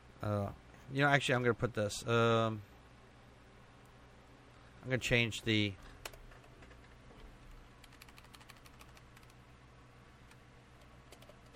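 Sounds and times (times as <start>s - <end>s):
steady low electrical hum: 0.0s - 11.5s
speech: 0.2s - 2.7s, 4.8s - 6.2s
fingers typing on a computer keyboard: 7.8s - 9.4s, 10.3s - 11.5s.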